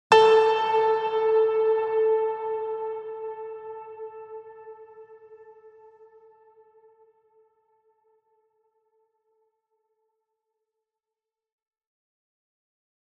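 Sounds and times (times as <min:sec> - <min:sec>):
trailer piano ping: 0:00.1 - 0:05.4.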